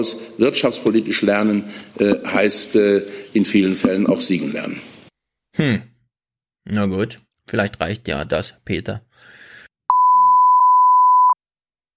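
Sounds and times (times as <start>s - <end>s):
speech: 0.0s - 4.9s, 5.6s - 5.9s, 6.7s - 9.4s
censor beep: 9.9s - 11.4s.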